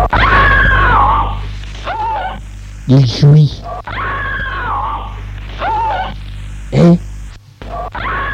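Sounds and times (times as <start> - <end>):
woman screaming in a long strained wail: 0.1 - 2.4, 3.8 - 6.2, 7.8 - 8.3
speech: 2.9 - 3.6, 6.8 - 7.0.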